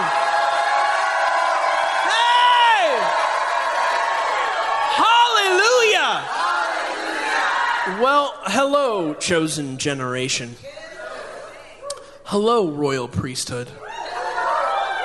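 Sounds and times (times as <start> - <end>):
large crowd shouting and cheering: 0.0 - 9.2, 10.6 - 12.1, 13.8 - 15.0
speech: 8.0 - 10.7, 12.3 - 13.8.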